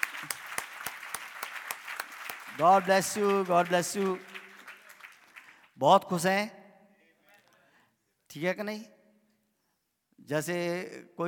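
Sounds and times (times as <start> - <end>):
church audience clapping in unison to welcome a pastor: 0.0 - 6.2
speech: 2.6 - 4.3, 5.8 - 6.6, 8.4 - 8.9, 10.3 - 11.2.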